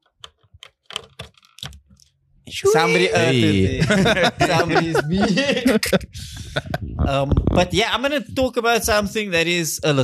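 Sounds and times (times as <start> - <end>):
memory card being plugged into a game console: 0.0 - 2.1
speech: 2.5 - 10.0
laughter: 2.7 - 7.0.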